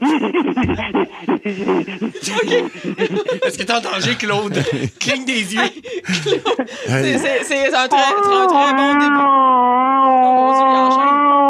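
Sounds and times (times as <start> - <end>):
laughter: 0.0 - 8.7
speech: 0.1 - 11.4
human voice imitating a fighting cat yowl: 7.9 - 11.4.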